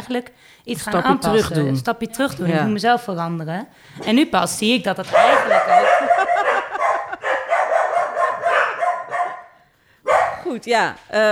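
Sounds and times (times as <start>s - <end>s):
speech: 0.1s - 6.1s, 10.5s - 11.3s
several dogs barking: 5.0s - 10.5s
laughter: 5.2s - 7.5s.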